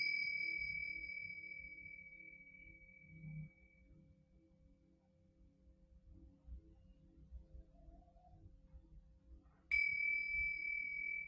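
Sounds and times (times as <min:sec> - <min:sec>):
singing bowl ringing with a bright pure tone: 0:00.0 - 0:04.0, 0:09.7 - 0:11.2.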